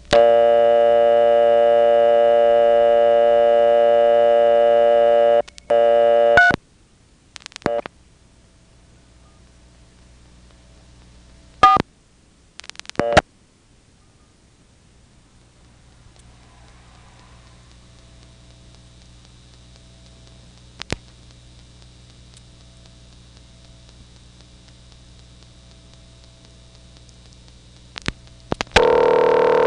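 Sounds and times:
payphone line hiss: 0.0s - 6.6s, 7.4s - 7.9s, 11.6s - 11.8s, 12.6s - 13.3s, 15.5s - 29.6s
payphone telephone tone: 0.1s - 6.6s, 11.6s - 11.8s, 13.0s - 13.2s, 28.7s - 29.6s
payphone line clicks and switching noises: 28.0s - 29.6s.

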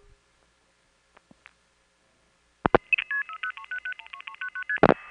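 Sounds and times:
touch-tone dialing beeps: 2.8s - 4.9s.

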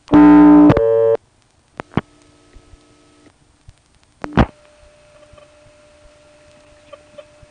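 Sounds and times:
faint steady hum of telephone line tones: 0.0s - 7.4s
loud buzzy telephone line tone after dialing a local exchange: 0.1s - 1.2s.

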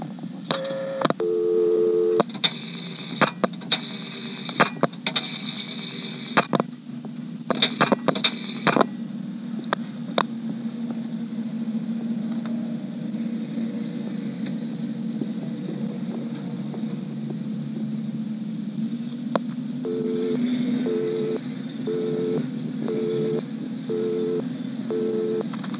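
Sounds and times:
steady telephone line hum: 0.0s - 25.7s
telephone dialing tones and clicks to a Centrex line: 0.5s - 2.6s, 19.9s - 25.5s
short repeating telephone tones: 19.8s - 25.5s.

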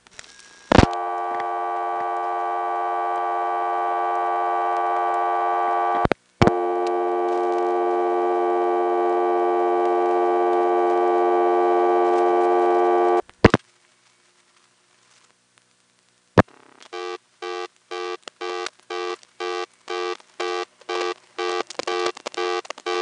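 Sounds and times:
telephone reorder tone on an older step-by-step exchange: 0.2s - 13.6s, 16.9s - 22.9s.

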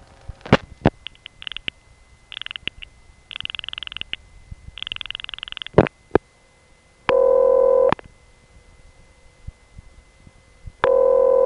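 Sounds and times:
clicks: 0.5s - 4.2s, 4.8s - 5.9s
brief high chirpy telephone line noises: 0.7s - 6.2s
short telephone ringback tone: 7.1s - 7.9s, 10.8s - 11.4s.

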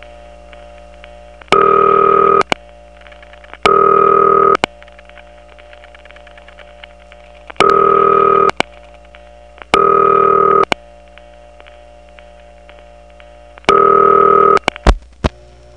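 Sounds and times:
reorder signal from the line's power supply: 0.0s - 15.0s
faint dial tone from the line's power supply: 0.6s - 2.6s, 3.6s - 4.7s, 7.3s - 14.8s
telephone ringing on a Toco Hills line: 1.5s - 2.5s, 3.6s - 4.6s, 7.6s - 8.6s, 9.7s - 10.7s, 13.7s - 14.7s.

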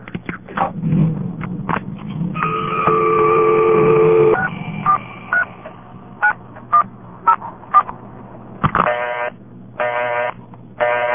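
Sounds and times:
faint hum: 0.0s - 11.1s
longer steady tone on a payphone: 1.1s - 9.1s.

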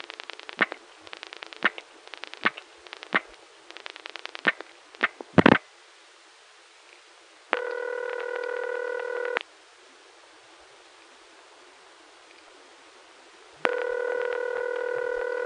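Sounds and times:
constant hiss: 0.0s - 15.4s
long telephone tone bursts while dialing on a coin phone: 7.6s - 9.4s, 13.6s - 15.4s.

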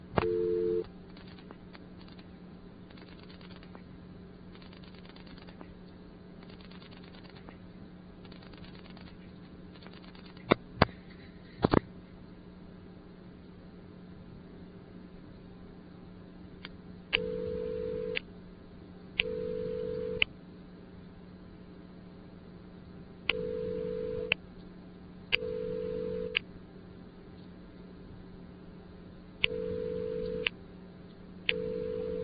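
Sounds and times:
telephone line steady low hum: 0.2s - 1.4s, 17.1s - 18.3s, 19.2s - 20.3s, 23.3s - 24.4s, 25.3s - 26.5s, 29.4s - 30.6s, 31.5s - 32.2s.

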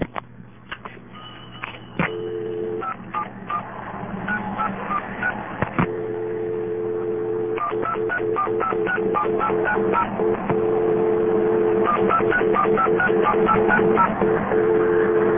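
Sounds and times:
steady hum: 0.0s - 15.3s
touch-tone dialing beeps on a telephone ringback test line: 1.2s - 3.6s, 7.6s - 10.1s, 11.9s - 14.1s
continuous touch-tone dial tone: 2.0s - 3.0s, 5.9s - 15.3s.

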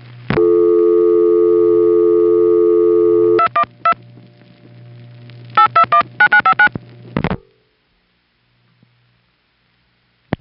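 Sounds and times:
dialing pulses and clicks: 0.3s - 4.8s, 5.4s - 7.4s
telephone dial tone on a crossbar 5 switching system: 0.4s - 4.0s.

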